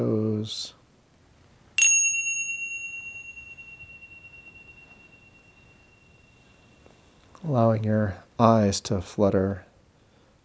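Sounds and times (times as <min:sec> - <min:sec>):
speech: 0:00.0 - 0:00.8, 0:07.4 - 0:09.7
meditation bell ringing with a pure tone: 0:01.8 - 0:07.4.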